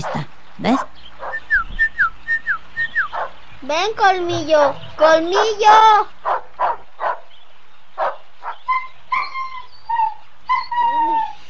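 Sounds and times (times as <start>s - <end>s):
dog barking: 0.0s - 1.5s, 3.1s - 3.4s, 4.6s - 7.3s, 8.0s - 9.6s
speech: 0.6s - 0.9s, 3.7s - 6.1s
dog whimpering and whining: 8.7s - 11.4s.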